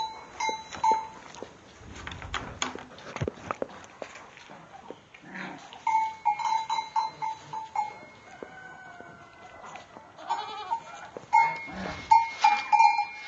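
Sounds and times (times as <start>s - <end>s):
bells clinking: 0.0s - 1.4s, 5.8s - 8.5s, 11.3s - 13.2s
goats shuffling around: 0.0s - 13.2s
several goats bleating inside a stable: 10.2s - 12.0s.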